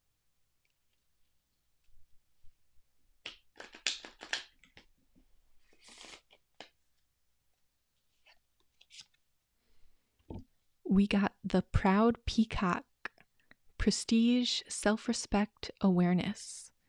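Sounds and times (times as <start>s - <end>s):
deck of oracle cards being shuffled: 3.2s - 5.0s, 5.6s - 7.0s, 8.0s - 9.2s
speech: 10.9s - 12.9s, 13.8s - 16.7s.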